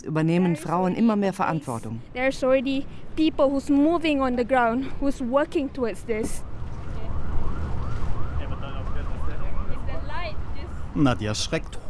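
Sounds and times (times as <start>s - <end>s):
speech: 0.0s - 6.5s, 11.0s - 11.8s
low rumble of traffic: 0.0s - 11.8s
police car siren wailing: 6.8s - 11.8s.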